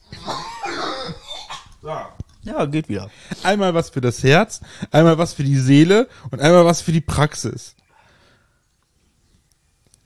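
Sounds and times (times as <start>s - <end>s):
person coughing harshly: 0.1s - 1.8s
speech: 1.9s - 7.8s.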